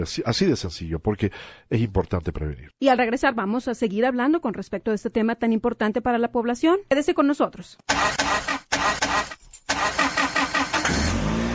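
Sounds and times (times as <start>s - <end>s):
speech: 0.0s - 8.5s
everyday car engine cranking, stalling and starting: 7.9s - 11.5s.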